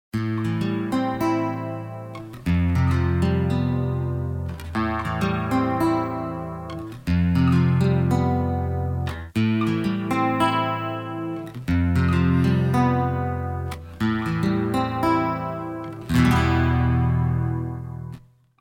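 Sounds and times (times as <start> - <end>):
rhythm guitar recorded direct input: 0.2 - 18.5.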